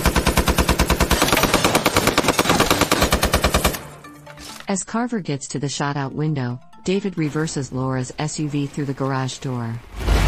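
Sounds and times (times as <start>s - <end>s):
heavy machine gun firing: 0.0s - 3.9s
speech: 4.7s - 10.1s.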